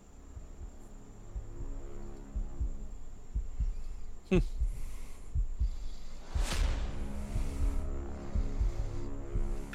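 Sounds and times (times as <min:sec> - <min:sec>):
droning hum: 0:00.0 - 0:09.7
low steady heartbeat thumping: 0:00.0 - 0:09.7
sharp whooshing swells: 0:06.2 - 0:08.9.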